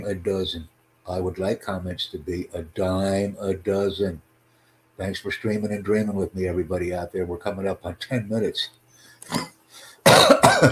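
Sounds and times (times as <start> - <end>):
speech: 0.0 - 4.3, 5.0 - 9.5, 10.1 - 10.7
soft throat sound: 9.2 - 10.2
harsh coughs: 9.3 - 10.7.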